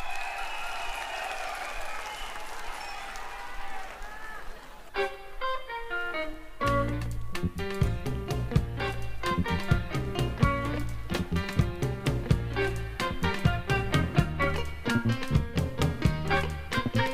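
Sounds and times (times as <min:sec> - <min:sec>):
live audience at a band contest clapping and cheering: 0:00.0 - 0:05.0
band playing loud music: 0:06.6 - 0:17.1.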